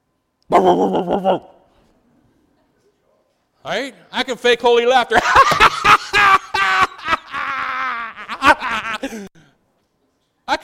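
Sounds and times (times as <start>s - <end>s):
speech: 0.5s - 1.5s, 3.6s - 6.4s, 9.0s - 9.4s
person imitating a dog bark: 0.5s - 1.6s
laughter: 5.1s - 9.3s.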